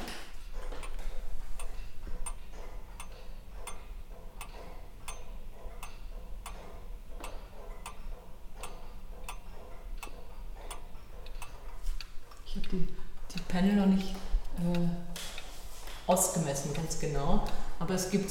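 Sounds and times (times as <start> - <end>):
small Dachluhr pendulum wall clock ticking: 0.0 - 15.5
low hum: 0.0 - 18.2
speech: 12.7 - 15.1, 16.1 - 18.2.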